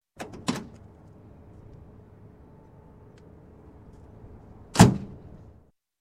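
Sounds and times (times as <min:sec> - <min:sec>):
truck door opening and closing: 0:00.2 - 0:00.9, 0:04.7 - 0:05.4.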